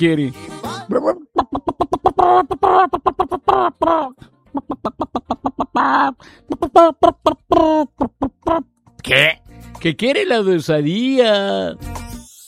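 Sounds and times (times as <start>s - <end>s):
speech: 0.0s - 1.6s, 2.2s - 12.3s
voice imitating a hen's clucking: 0.7s - 8.7s.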